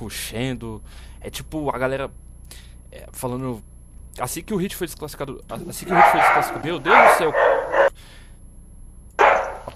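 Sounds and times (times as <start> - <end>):
speech: 0.0 - 8.2
dog barking: 5.6 - 8.0, 9.2 - 9.7.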